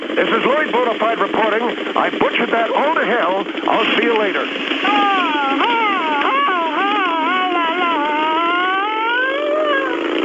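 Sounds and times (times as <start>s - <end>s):
speech: 0.2s - 5.9s
voice imitating a police siren: 2.3s - 10.1s.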